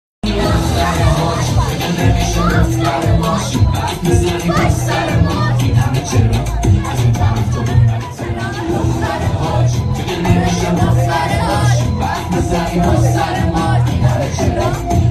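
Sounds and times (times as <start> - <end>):
party sounds: 0.2 - 15.1.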